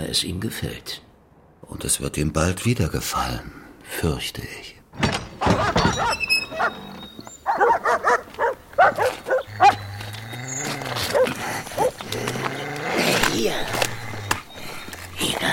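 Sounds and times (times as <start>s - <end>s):
speech: 0.1s - 6.9s
several dogs barking while being fed raw kidneys: 5.4s - 15.5s.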